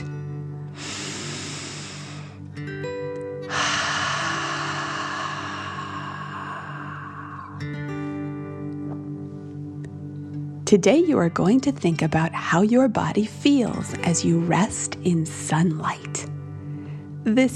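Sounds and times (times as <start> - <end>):
quiet music: 0.0 - 17.5
deep breath in and out: 0.7 - 2.6, 3.4 - 8.7, 16.5 - 17.2
speech: 10.7 - 16.1, 17.3 - 17.5.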